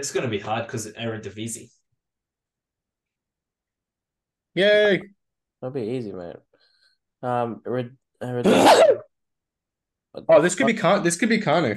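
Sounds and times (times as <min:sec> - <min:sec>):
speech: 0:00.0 - 0:01.8, 0:04.6 - 0:06.5, 0:07.2 - 0:09.0, 0:10.1 - 0:11.7
person sneezing: 0:08.4 - 0:09.1.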